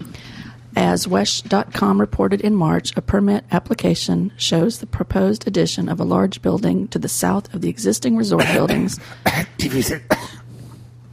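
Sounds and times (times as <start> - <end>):
speech: 0.8 - 10.4
man pretending to cough while saying a word: 8.4 - 10.4.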